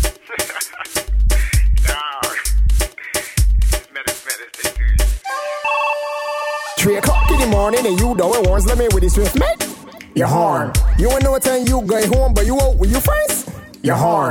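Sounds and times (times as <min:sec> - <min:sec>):
laughter: 0:00.1 - 0:03.4
melodic phone ringtone over thumping bass pulses: 0:05.3 - 0:08.7
speech: 0:06.9 - 0:14.3.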